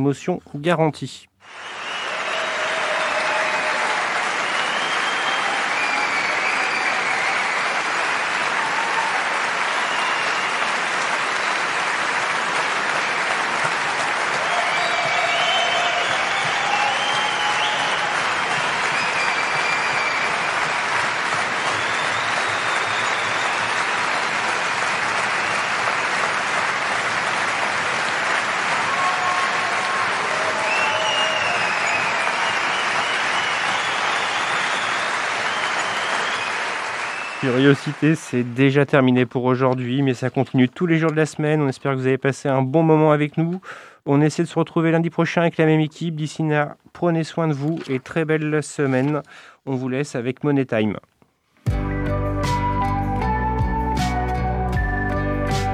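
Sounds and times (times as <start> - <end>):
speech: 0.0 - 1.8, 37.6 - 51.1
audience whistles: 1.4 - 7.8, 9.7 - 10.7, 14.4 - 20.9, 21.6 - 24.0, 25.2 - 25.9, 30.3 - 37.7, 52.0 - 55.7
audience cheering: 1.4 - 38.6, 52.4 - 55.7
large audience applause at the end of a show: 1.4 - 38.8.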